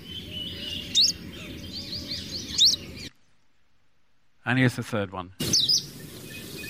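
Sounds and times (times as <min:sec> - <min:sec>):
Hume's leaf warbler calls: 0:00.0 - 0:03.3, 0:05.4 - 0:06.6
background hiss: 0:00.0 - 0:06.6
speech: 0:04.5 - 0:06.0.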